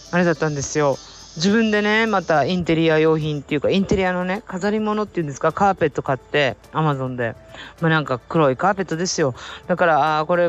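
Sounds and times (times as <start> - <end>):
high-pitched cicada drone: 0.0 - 10.4
speech: 0.1 - 10.4.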